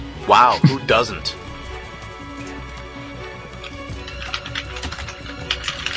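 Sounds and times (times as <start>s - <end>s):
speech: 0.3s - 1.4s
typing on a computer keyboard: 3.6s - 5.9s.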